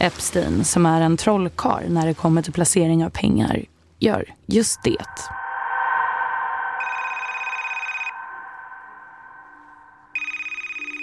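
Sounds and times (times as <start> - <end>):
speech: 0.0 - 5.4
steady droning musical bed: 5.0 - 11.0
telephone ringing in electronic bursts: 6.8 - 8.2, 10.2 - 11.0.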